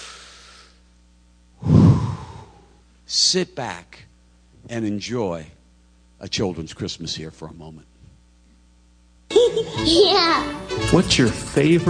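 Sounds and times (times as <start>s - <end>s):
group taking a collective deep breath: 0.0s - 0.9s, 1.6s - 2.8s
speech: 3.1s - 5.6s, 6.2s - 7.9s, 9.6s - 11.8s.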